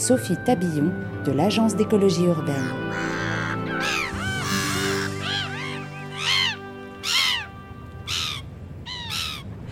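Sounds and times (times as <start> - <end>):
speech: 0.0 - 3.2
herring gull calling in Paris: 2.4 - 9.5.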